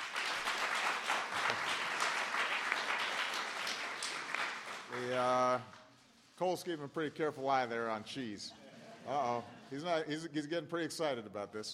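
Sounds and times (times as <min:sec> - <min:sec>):
audience applause at a national Thanksgiving turkey presentation ceremony: 0:00.0 - 0:05.4
speech: 0:05.2 - 0:05.8, 0:06.4 - 0:11.7.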